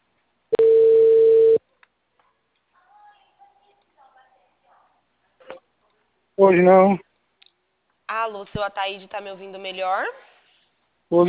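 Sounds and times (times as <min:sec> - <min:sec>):
steady mid-pitched telephone beep while calling someone back: 0:00.5 - 0:01.6
speech: 0:06.4 - 0:07.1, 0:08.3 - 0:10.3, 0:11.1 - 0:11.2.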